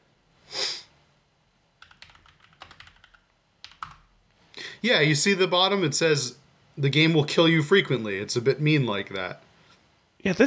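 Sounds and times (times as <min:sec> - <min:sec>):
short breathy sniff: 0:00.4 - 0:01.0
typing on a computer keyboard: 0:01.8 - 0:04.1
speech: 0:04.8 - 0:09.4, 0:10.2 - 0:10.4.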